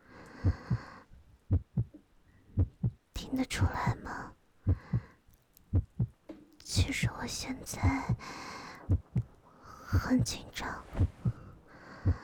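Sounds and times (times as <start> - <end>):
deep heartbeat thumping in lub-dub pairs: 0.4 - 0.9, 1.5 - 2.0, 2.6 - 3.0, 4.7 - 5.1, 5.7 - 6.2, 6.8 - 8.2, 8.8 - 12.2
person speaking softly: 3.2 - 4.4, 6.6 - 8.9, 9.6 - 11.5
speech: 3.4 - 4.0, 7.2 - 8.4, 10.1 - 10.8.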